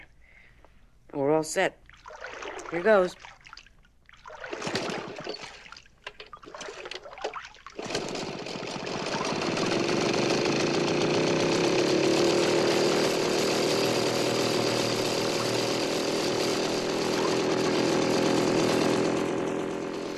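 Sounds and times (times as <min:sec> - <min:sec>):
speech: 0:01.2 - 0:01.8, 0:02.7 - 0:03.3
outboard boat motor running under a hot sun: 0:07.8 - 0:20.1.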